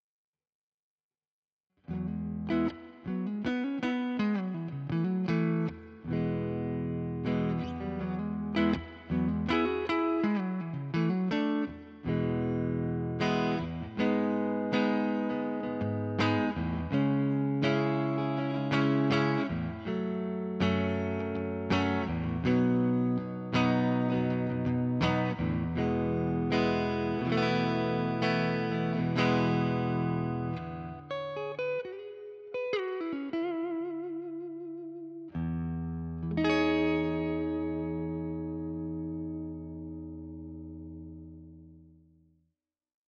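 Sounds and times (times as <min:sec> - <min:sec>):
clean electric guitar on neck pickup: 0:01.8 - 0:42.2.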